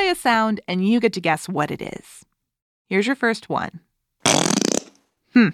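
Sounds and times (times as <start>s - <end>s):
speech: 0.2s - 2.3s, 2.9s - 4.4s, 5.3s - 5.5s
whoopee cushion deflating: 4.3s - 5.0s.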